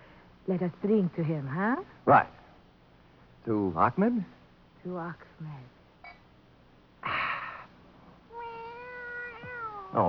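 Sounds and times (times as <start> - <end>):
speech: 0.5 - 2.4, 3.4 - 5.8
cat meowing: 8.3 - 10.0.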